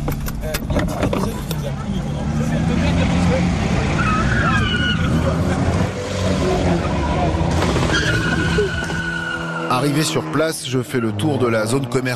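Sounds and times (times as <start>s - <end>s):
people's voices and crowd noise: 0.0s - 9.2s
tuned car engines roaring and revving in an urban street race: 0.0s - 12.1s
tires squealing and skidding: 2.3s - 12.1s
speech: 9.9s - 12.1s.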